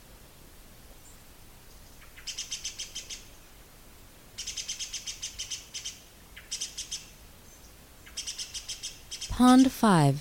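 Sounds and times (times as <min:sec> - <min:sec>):
disturbed great spotted woodpecker Dendrocopos major alarm call: 0:01.8 - 0:03.4, 0:04.4 - 0:09.4
speech: 0:09.4 - 0:10.1.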